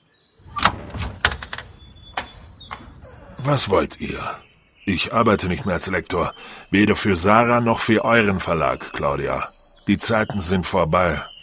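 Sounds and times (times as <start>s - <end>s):
low rumble of a door moving: 0.4s - 4.4s
door latch clicks and rattles: 0.5s - 3.1s
speech: 3.4s - 11.3s.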